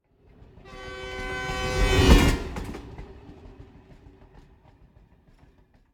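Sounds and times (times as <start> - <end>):
European train whistle: 0.6 - 2.8.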